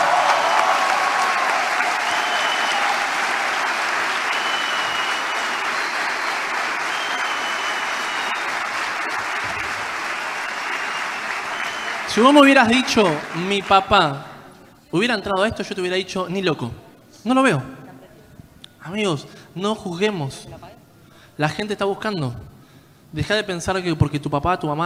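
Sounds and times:
large audience applause: 0.0s - 14.2s
speech: 12.2s - 14.3s, 14.9s - 17.8s, 18.8s - 20.8s, 21.4s - 22.5s, 23.1s - 24.8s.

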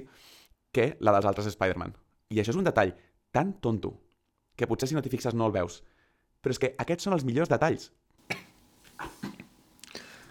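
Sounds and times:
speech: 0.0s - 4.0s, 4.6s - 8.3s
person holding back a cough in stifled bursts: 8.2s - 10.3s.

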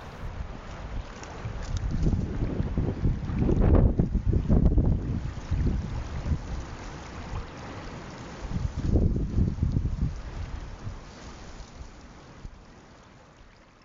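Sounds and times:
blustery wind across an open beach in Nova Scotia buffeting the microphone: 0.0s - 7.5s, 8.5s - 11.0s.

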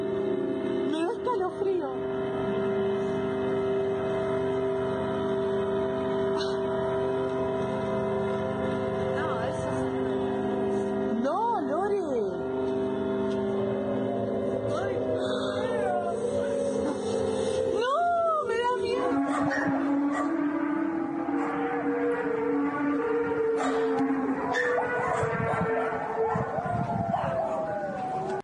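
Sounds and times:
loud strange rumbling drone in the sky: 0.0s - 28.4s
rising and falling wails: 0.0s - 28.4s
dogs howling and yelping: 15.5s - 28.4s.

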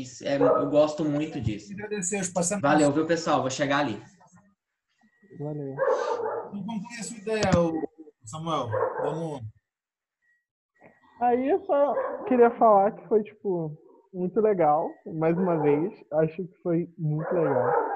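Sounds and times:
speech: 0.0s - 4.2s, 5.4s - 9.6s, 11.2s - 17.9s
dogs barking: 0.3s - 1.0s, 5.8s - 6.6s, 8.6s - 9.3s, 11.9s - 12.4s, 17.2s - 17.9s.

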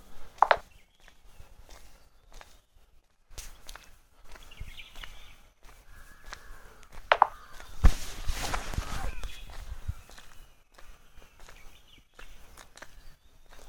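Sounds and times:
footsteps on a breezy road: 0.0s - 13.6s
louder rustling burst: 7.6s - 9.5s.

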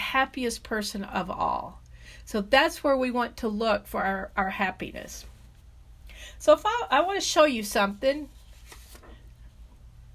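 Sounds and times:
speech: 0.1s - 5.3s, 6.4s - 8.4s
sheet of paper rustling as it is picked up and shaken: 7.9s - 9.6s.

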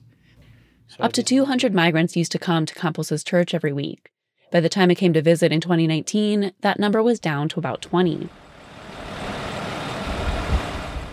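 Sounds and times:
speech: 0.9s - 8.4s
bus carrying migrant families pulling in with heavy engine: 7.7s - 11.1s.

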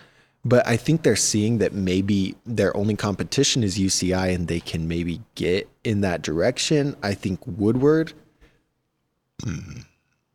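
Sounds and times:
speech: 0.4s - 8.2s, 9.4s - 9.9s
loud burp: 9.4s - 10.2s.

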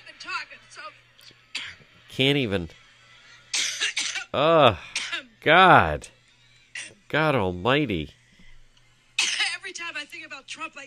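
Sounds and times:
speech: 0.2s - 2.8s, 4.4s - 6.2s, 7.1s - 8.2s, 10.2s - 10.8s
woman coughing in harsh fits: 1.6s - 1.8s, 3.5s - 5.3s, 9.2s - 9.7s
strained throat-clearing: 3.6s - 6.0s.

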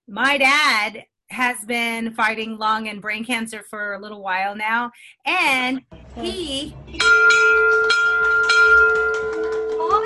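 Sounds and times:
speech: 0.1s - 8.5s
handheld bell rung to mark treatment end: 7.0s - 10.0s.

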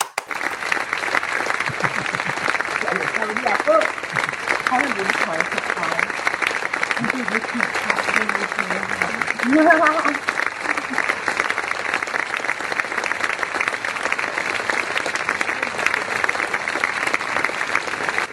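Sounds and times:
crowd clapping: 0.0s - 18.3s
laughter: 1.4s - 5.8s, 6.8s - 11.3s
speech: 3.2s - 6.0s, 7.0s - 10.3s.

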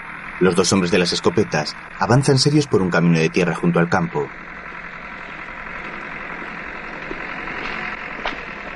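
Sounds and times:
tractor diesel engine plowing a field: 0.0s - 8.7s
speech: 0.4s - 4.6s.

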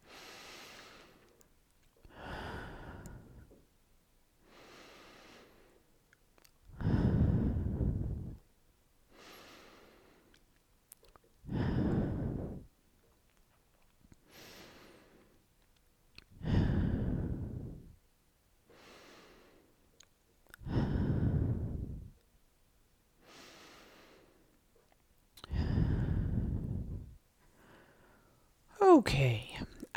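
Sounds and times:
deep breaths in through the nose and out through the mouth: 0.0s - 1.4s, 2.0s - 3.7s, 4.4s - 5.9s, 6.7s - 8.5s, 9.1s - 10.4s, 11.4s - 12.8s, 14.2s - 15.4s, 16.3s - 18.0s, 18.7s - 19.8s, 20.5s - 22.2s, 23.2s - 24.6s, 25.4s - 28.5s
speech: 29.0s - 29.7s.

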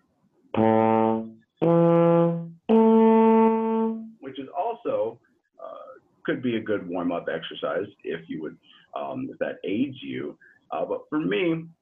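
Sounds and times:
speech: 0.5s - 0.8s, 6.3s - 11.7s
trombone notes played with separate tongued attacks in first position: 0.5s - 4.4s.

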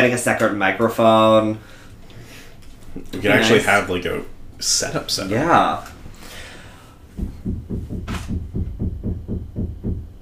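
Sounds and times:
speech: 0.0s - 1.8s, 3.0s - 5.9s
dull knocks: 7.1s - 10.2s.

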